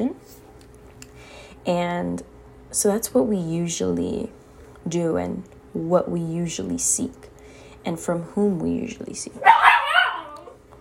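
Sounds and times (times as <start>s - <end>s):
speech: 1.6s - 9.6s
puppy barking: 9.4s - 10.6s.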